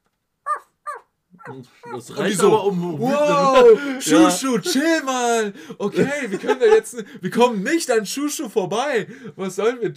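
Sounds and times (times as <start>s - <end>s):
dog barking at villagers: 0.5s - 2.0s
laughter: 1.5s - 7.8s
speech: 1.5s - 9.9s.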